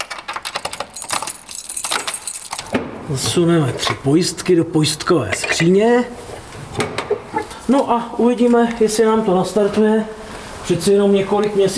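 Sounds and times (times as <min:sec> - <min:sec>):
bunch of keys for small railway motor cars jangling: 0:00.0 - 0:02.8
speech: 0:03.1 - 0:06.2, 0:06.8 - 0:07.0, 0:07.7 - 0:11.7.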